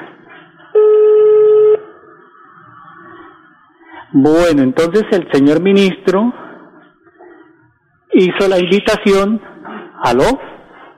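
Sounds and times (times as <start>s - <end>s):
telephone call ringing out as electronic ringback tone: 0.8s - 1.8s
speech: 4.1s - 6.4s, 8.2s - 10.5s.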